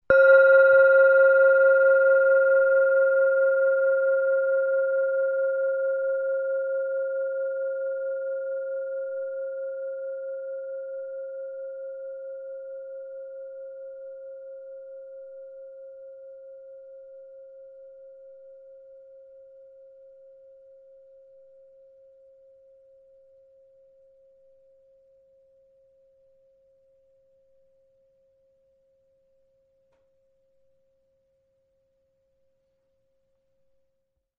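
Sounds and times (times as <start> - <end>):
titanium singing bowl: 0.1 - 25.2.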